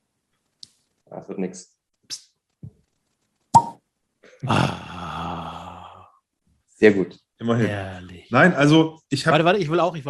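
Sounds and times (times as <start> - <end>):
speech: 1.2 - 2.2, 6.8 - 10.0
dry cork popping from a corked bottle: 3.5 - 3.8.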